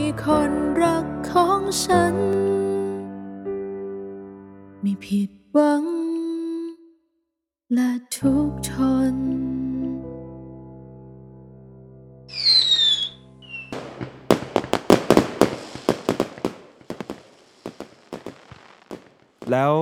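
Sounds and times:
speech: 0.1 - 2.7, 4.8 - 6.0, 7.7 - 9.6, 19.5 - 19.8
fireworks exploding: 12.3 - 19.8.

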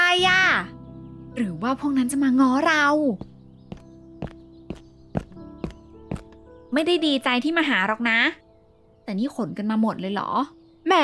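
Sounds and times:
speech: 1.4 - 3.3, 6.7 - 8.4, 9.1 - 11.0
footsteps running down stairs: 3.7 - 6.3.

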